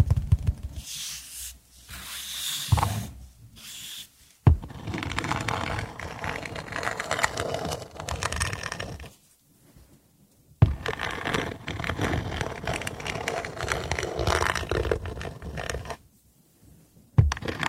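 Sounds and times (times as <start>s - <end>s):
wood being rubbed and scraped: 0.8s - 9.2s, 10.6s - 16.0s, 17.2s - 17.6s
sharp knocks: 4.5s - 4.8s, 17.2s - 17.6s.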